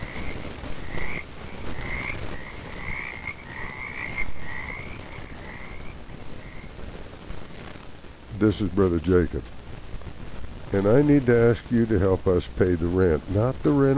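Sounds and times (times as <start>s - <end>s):
frogs croaking in chorus: 0.0s - 6.8s
constant hiss: 0.0s - 13.9s
speech: 8.4s - 9.6s, 10.7s - 13.9s.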